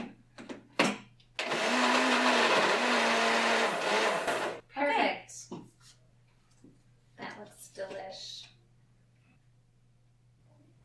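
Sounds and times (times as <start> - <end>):
blender whirring as it blends a dairy-free pumpkin pie-style anti-inflammatory drink: 1.4 - 4.6.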